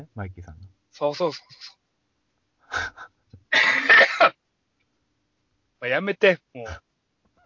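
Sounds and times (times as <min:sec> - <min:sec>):
speech: 0:00.1 - 0:01.8, 0:02.8 - 0:04.3, 0:05.8 - 0:06.9
wheezing coughing fit: 0:02.7 - 0:04.4.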